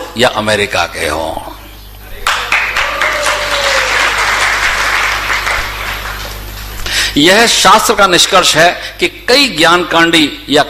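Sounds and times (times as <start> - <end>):
speech: 0.2 - 1.5, 7.2 - 10.6
audience clapping: 2.2 - 6.8.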